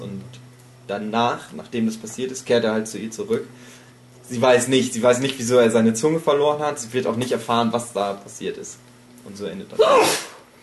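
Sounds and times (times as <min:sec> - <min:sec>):
speech: 0:00.2 - 0:10.3
person sneezing: 0:09.8 - 0:10.4.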